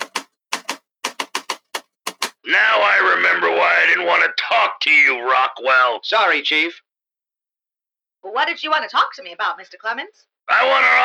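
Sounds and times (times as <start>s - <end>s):
typing key strikes: 0.0s - 2.4s
speech: 2.5s - 2.8s, 3.8s - 6.8s, 8.2s - 11.0s.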